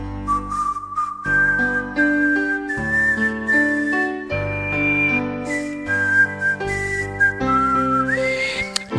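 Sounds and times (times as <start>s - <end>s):
national anthem with whistle-like lead melody: 0.2s - 8.9s.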